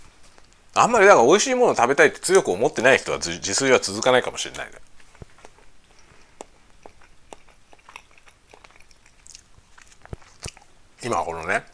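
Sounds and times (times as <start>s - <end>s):
chewing a raisin butter roll: 0.0s - 11.7s
speech: 0.8s - 5.0s, 11.0s - 11.7s
moist mouth clicks: 3.9s - 10.8s.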